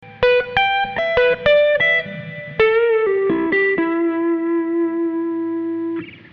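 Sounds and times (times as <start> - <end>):
12-bar musical lick: 0.0 - 6.2.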